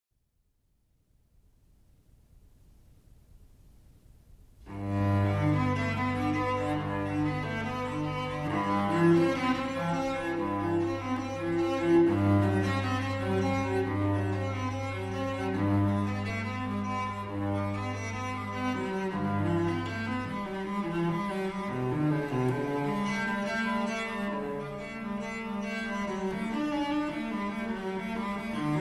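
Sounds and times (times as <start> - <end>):
cello suite: 4.6 - 28.7.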